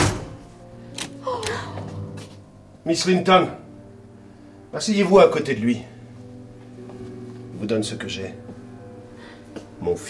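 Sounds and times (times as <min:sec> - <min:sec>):
door being pushed shut inside a house: 0:00.0 - 0:00.4
speech: 0:02.8 - 0:03.6, 0:04.7 - 0:05.9, 0:07.6 - 0:08.4, 0:09.8 - 0:10.0.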